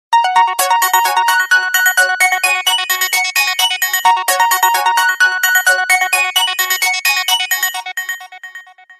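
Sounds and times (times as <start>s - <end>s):
Sony Xperia phone ringtone: 0.2s - 8.9s.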